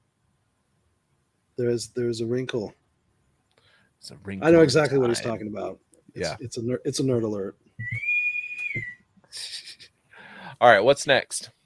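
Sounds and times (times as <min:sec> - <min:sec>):
speech: 0:01.6 - 0:02.8, 0:04.0 - 0:08.1, 0:10.6 - 0:11.6
person whistling a sustained high note: 0:07.8 - 0:09.1
airy hissing noise: 0:09.3 - 0:10.6.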